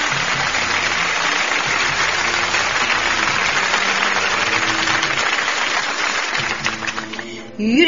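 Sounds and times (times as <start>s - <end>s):
crowd applauding after a poem recital: 0.0s - 7.4s
speech: 7.6s - 7.8s.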